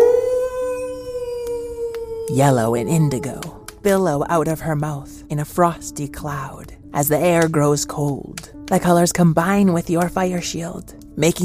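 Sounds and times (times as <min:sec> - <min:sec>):
wolf howling: 0:00.0 - 0:03.9
speech: 0:02.3 - 0:11.4.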